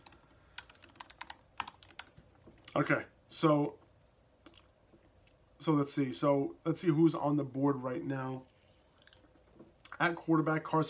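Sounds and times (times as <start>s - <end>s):
quiet typing on a computer keyboard: 0.0s - 2.2s
speech: 2.8s - 3.8s, 5.6s - 8.5s, 10.0s - 10.8s.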